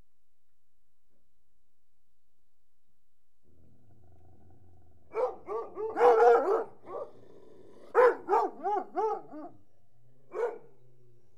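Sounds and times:
hunting hounds growling: 3.5 - 9.4
hunting hounds barking: 5.1 - 7.1, 7.9 - 9.6, 10.3 - 10.7.

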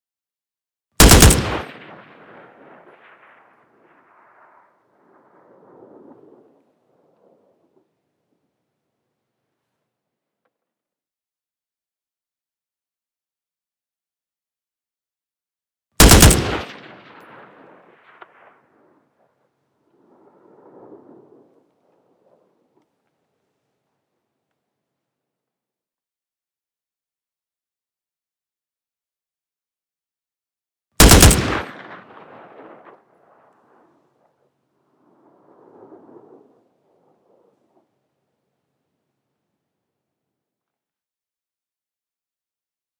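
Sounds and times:
AK47 rifle burst with tail: 1.0 - 2.4, 16.0 - 17.4, 31.0 - 32.9.

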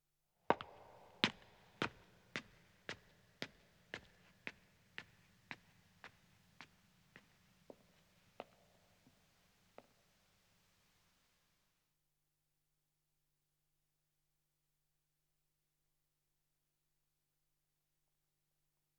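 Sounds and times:
footsteps ascending echoing stone stairs: 0.5 - 9.2.

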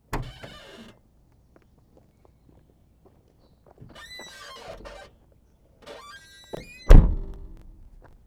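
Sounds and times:
car trunk: 6.9 - 7.6
car doors: 6.9 - 7.7.

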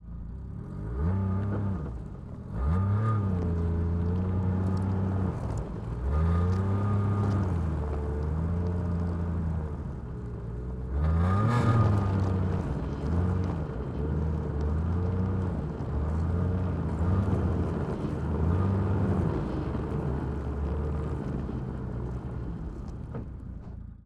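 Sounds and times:
2006 Yamaha RS Venture snowmobile engine starting with blips, recorded onboard: 0.0 - 24.0.

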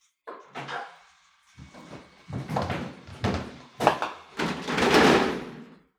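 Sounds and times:
nine-pin bowling pins re-racking: 1.6 - 5.9.

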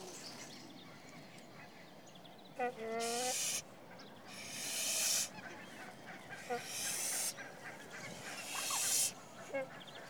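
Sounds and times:
Nene goose giving drawn-out nasal honking calls: 2.6 - 3.6, 4.3 - 9.7
loud bursts of hissing noise: 3.0 - 3.6, 4.3 - 5.3, 6.4 - 7.4, 8.0 - 9.2.

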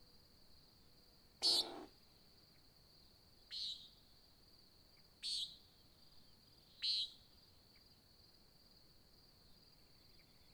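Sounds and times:
nighthawk giving nasal buzzy calls at dawn in Oregon: 1.4 - 1.9.

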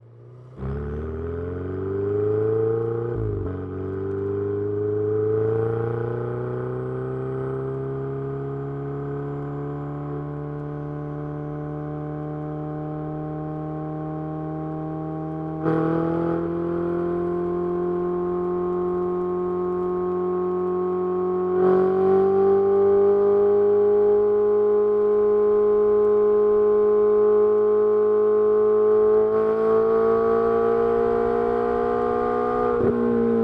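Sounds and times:
2016 Ferrari 488 exhaust at steady RPMs while driving, onboard: 0.0 - 33.4.

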